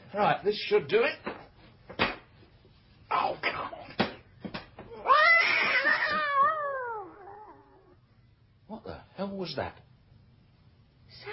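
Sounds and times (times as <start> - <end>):
speech: 0.1 - 1.3, 9.4 - 9.9
cat yowling: 4.9 - 8.0.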